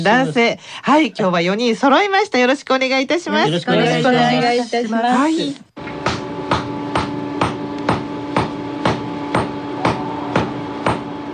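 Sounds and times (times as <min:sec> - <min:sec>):
speech: 0:00.0 - 0:05.6
low workshop hum: 0:05.8 - 0:11.3
hammer striking iron to forge fire tongs: 0:06.0 - 0:11.3.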